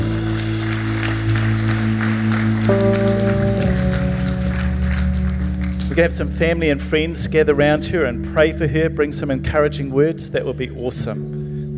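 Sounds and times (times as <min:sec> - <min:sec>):
many people clapping after a prayer: 0:00.0 - 0:06.8
sustained keyboard chords: 0:00.0 - 0:11.7
speech: 0:06.0 - 0:11.4.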